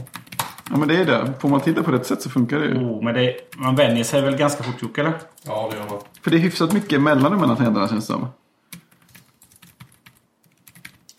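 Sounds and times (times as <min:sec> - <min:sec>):
typing on a very small laptop-style keyboard: 0:00.0 - 0:02.0, 0:05.2 - 0:07.7, 0:08.7 - 0:11.1
speech: 0:00.7 - 0:08.4.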